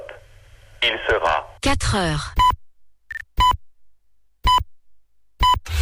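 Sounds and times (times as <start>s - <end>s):
speech: 0.9s - 2.4s
radio time signal short electronic beeps: 2.4s - 3.6s, 4.4s - 4.7s, 5.4s - 5.7s.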